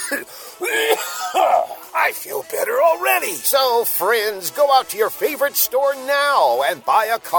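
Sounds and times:
person coughing with hacking raspy throaty coughs: 0.0s - 1.8s
speech: 0.1s - 7.3s.

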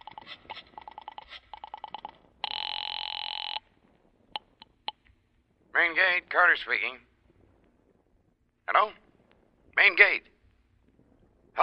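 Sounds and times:
sharp telephone line clicks: 0.0s - 3.6s, 4.4s - 5.2s
telephone line ring tones on an outgoing call: 0.0s - 3.7s
speech: 5.8s - 7.1s, 8.7s - 9.0s, 9.8s - 10.3s.

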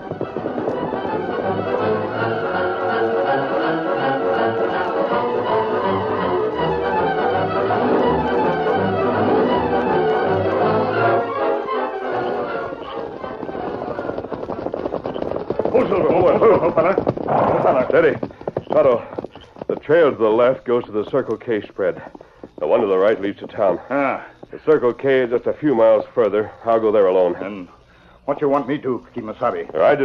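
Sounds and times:
horse hooves clip-clopping while trotting along a trail: 0.0s - 30.0s
loud dense sustained music: 0.2s - 13.3s
speech: 17.9s - 18.2s, 19.9s - 22.2s, 22.8s - 30.0s.

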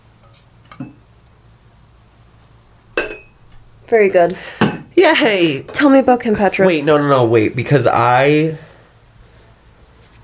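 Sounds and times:
low hum: 0.0s - 10.2s
glasses clinking together in a toast: 3.0s - 3.4s, 4.6s - 4.9s
speech: 3.9s - 8.6s.

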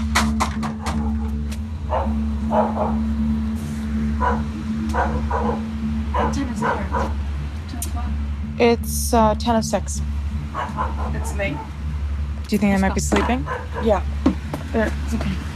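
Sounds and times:
steady low engine-like hum: 0.0s - 15.5s
dog barking outside a trailer: 0.7s - 3.2s, 4.2s - 7.2s, 10.5s - 11.7s, 13.1s - 14.0s
speech: 8.6s - 11.7s, 12.5s - 15.5s.

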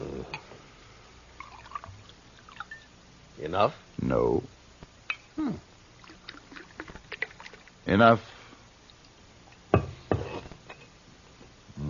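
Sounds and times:
drink being poured into a glass: 1.4s - 2.9s, 6.0s - 7.7s
speech: 3.5s - 4.6s, 5.4s - 5.7s, 7.9s - 8.3s.

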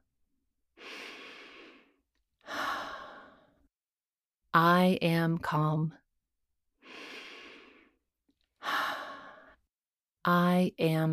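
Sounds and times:
deep breath in and out, calm and slow: 0.8s - 3.7s, 6.8s - 8.0s, 8.6s - 9.6s
speech: 4.6s - 6.0s, 10.3s - 11.1s.

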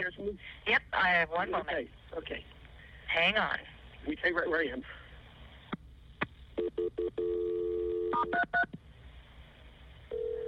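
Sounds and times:
speech: 0.0s - 5.0s
steady phone tone: 6.6s - 8.7s, 10.1s - 10.4s.

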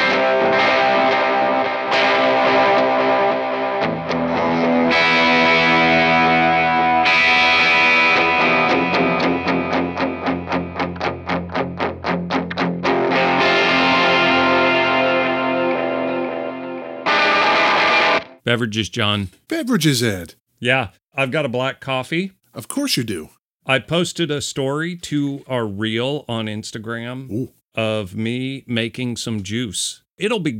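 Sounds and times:
Gibson Government Series Flying V electric guitar playing heavily distorted chords through effects: 0.0s - 18.4s
speech: 18.5s - 30.5s.

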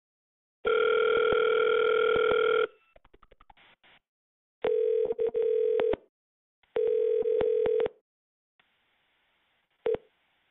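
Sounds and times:
telephone line electronic ring tone: 0.6s - 2.8s, 4.7s - 6.0s, 6.8s - 8.0s.

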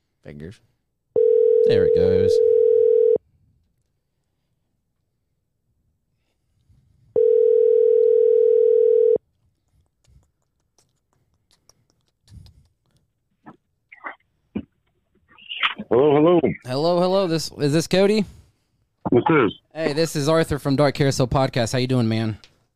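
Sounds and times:
speech: 0.2s - 0.8s, 1.6s - 2.8s, 16.7s - 18.4s, 19.3s - 22.5s
telephone ringback tone: 1.2s - 3.2s, 7.2s - 9.2s.

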